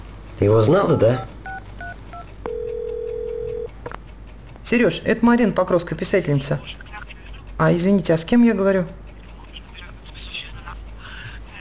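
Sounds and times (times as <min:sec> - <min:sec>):
low hum: 0:00.0 - 0:11.5
speech: 0:00.4 - 0:01.4, 0:04.7 - 0:06.8, 0:07.6 - 0:09.0
touch-tone keypad beeps as a woman dials a telephone number: 0:00.9 - 0:03.7.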